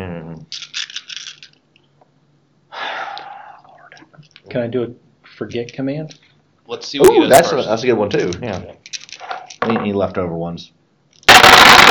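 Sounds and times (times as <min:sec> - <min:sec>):
double handful of dice rolled for a game: 0:00.5 - 0:01.6, 0:08.2 - 0:09.9, 0:11.2 - 0:11.9
soft breathy exhale: 0:02.7 - 0:03.8
speech: 0:04.5 - 0:08.8, 0:09.6 - 0:10.8.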